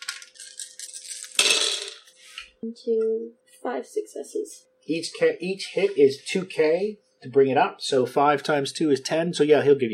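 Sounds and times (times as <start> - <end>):
handful of dice rattling and rolling onto a hard surface: 0.0 - 2.1
speech: 2.6 - 9.9.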